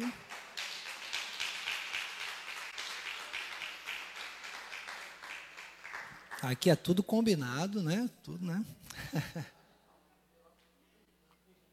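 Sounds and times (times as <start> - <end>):
crowd applauding: 0.0 - 6.7
speech: 6.4 - 9.6.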